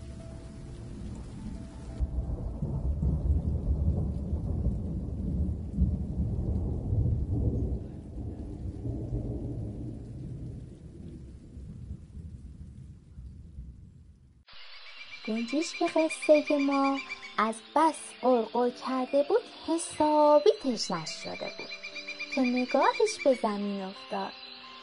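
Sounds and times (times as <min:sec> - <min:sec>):
heavy rainfall in a rainstorm: 0:00.0 - 0:12.8, 0:14.5 - 0:24.8
deep rolling thunder: 0:00.0 - 0:14.4
speech: 0:15.3 - 0:21.6, 0:22.4 - 0:24.4.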